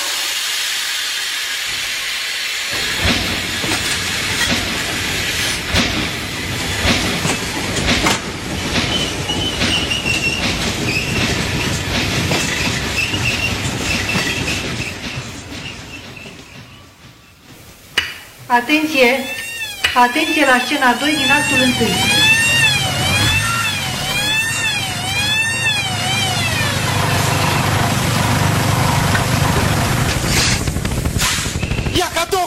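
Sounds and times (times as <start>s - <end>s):
steam hissing from a departing train: 0.0s - 32.0s
train wheels rumbling and clattering: 0.0s - 32.4s
speech: 18.5s - 19.4s, 20.0s - 22.2s.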